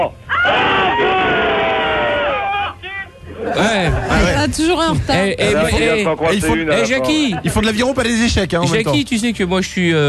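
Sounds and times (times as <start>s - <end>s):
speech: 0.0s - 1.1s, 3.6s - 10.0s
rowing club members shouting together in a locker room: 0.3s - 3.1s.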